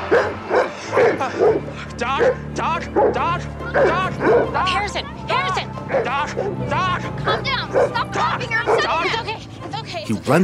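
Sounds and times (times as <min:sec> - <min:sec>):
dog barking: 0:00.0 - 0:04.9, 0:05.9 - 0:06.6, 0:07.3 - 0:09.3
speech: 0:02.2 - 0:05.2, 0:05.9 - 0:10.4.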